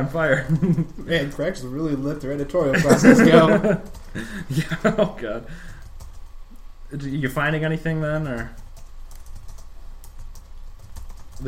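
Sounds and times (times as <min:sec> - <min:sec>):
speech: 0:00.0 - 0:05.8, 0:06.9 - 0:08.6
steady low hum: 0:00.0 - 0:11.4
laughter: 0:00.3 - 0:01.1, 0:02.7 - 0:05.4
typing a web search on a computer keyboard: 0:05.6 - 0:06.3, 0:08.1 - 0:11.4.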